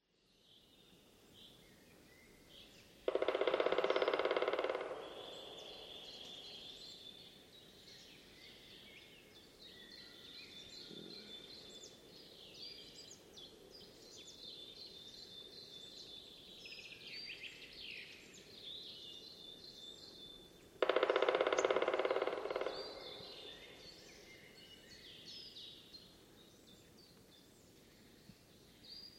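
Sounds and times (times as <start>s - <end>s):
faint birdsong in a forest: 1.4s - 29.1s
black woodpecker drumming on a tree: 3.0s - 7.0s, 20.6s - 24.6s.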